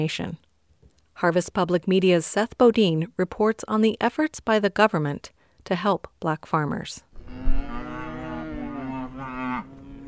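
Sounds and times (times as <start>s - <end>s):
speech: 0.0s - 0.5s, 1.2s - 7.4s
cow mooing on a farm: 7.2s - 10.0s.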